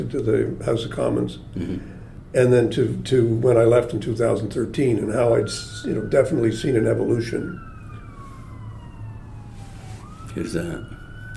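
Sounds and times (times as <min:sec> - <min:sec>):
speech: 0:00.0 - 0:07.7, 0:10.4 - 0:11.3
low rumble of traffic: 0:00.0 - 0:11.3
emergency vehicle siren passing outside: 0:03.5 - 0:11.3.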